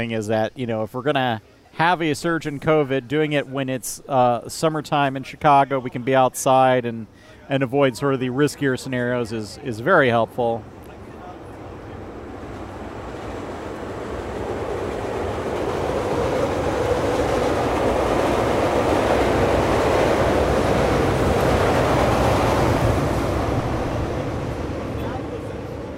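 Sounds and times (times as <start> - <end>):
speech: 0.0 - 10.8
two Chicago L trains and a Metra train passing: 1.0 - 25.9
rail clatter: 10.8 - 25.9.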